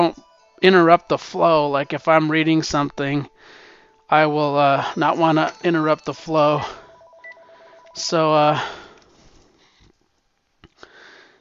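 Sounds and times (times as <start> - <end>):
speech: 0.1 - 6.8, 8.0 - 8.8
electronic telephone keypad tones as a phone is silenced: 6.8 - 8.2.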